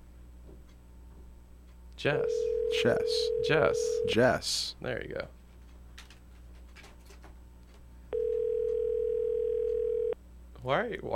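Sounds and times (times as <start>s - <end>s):
speech: 2.0s - 5.4s, 10.6s - 11.1s
electronic ringing tone of an outgoing telephone call: 2.4s - 4.2s, 8.1s - 10.2s.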